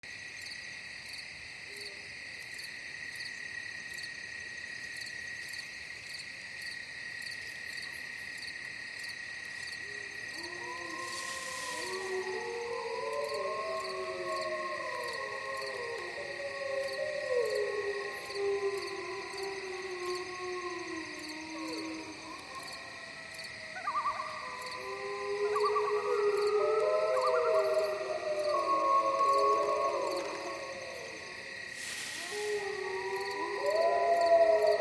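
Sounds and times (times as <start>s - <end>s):
wolf forest ambience: 9.3s - 34.8s.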